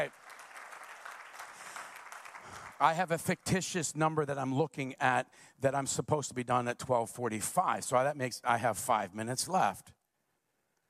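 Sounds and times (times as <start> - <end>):
speech: 0.0 - 0.2, 2.8 - 10.0
audience clapping hands in praise: 0.0 - 3.5.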